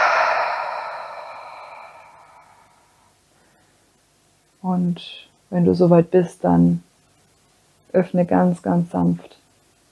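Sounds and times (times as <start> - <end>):
deep breathy exhalation through the mouth during a guided meditation: 0.0 - 2.7
speech: 4.6 - 6.9, 7.9 - 9.4.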